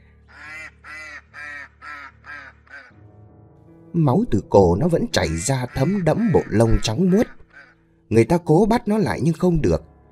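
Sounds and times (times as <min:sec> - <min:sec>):
white duck with a cut throat honking on the rim of a well: 0:00.3 - 0:03.0, 0:05.3 - 0:07.8
speech: 0:03.9 - 0:07.4, 0:08.1 - 0:09.9.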